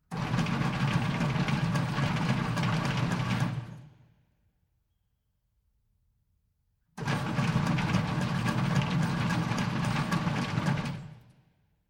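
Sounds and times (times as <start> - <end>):
large industrial conveyor with stone and soil starting and stopping: 0.1 - 3.9, 7.0 - 11.3.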